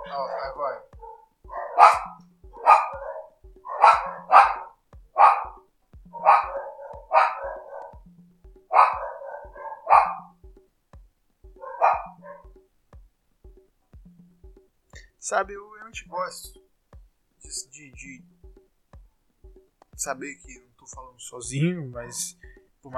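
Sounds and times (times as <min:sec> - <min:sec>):
dog barking outside in the street: 0:00.0 - 0:08.0, 0:08.7 - 0:10.4, 0:11.6 - 0:12.6
speech: 0:00.1 - 0:01.0, 0:15.3 - 0:16.6, 0:17.8 - 0:18.3, 0:20.0 - 0:22.9.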